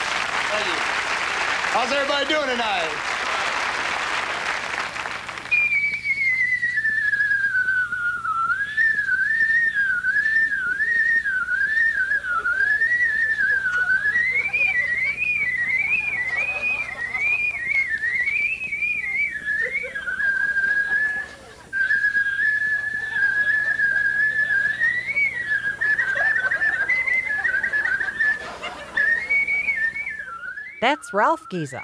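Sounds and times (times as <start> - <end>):
laughter: 0.0 - 5.5, 10.0 - 31.0
applause: 0.0 - 5.6, 13.5 - 15.2
man whistling a lively medley: 0.1 - 31.8
speech: 1.8 - 3.1, 31.1 - 31.8.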